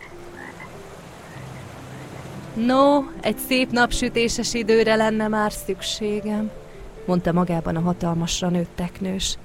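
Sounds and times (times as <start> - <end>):
frog croaking with low rough calls: 0.0 - 2.4
speech: 2.6 - 9.4.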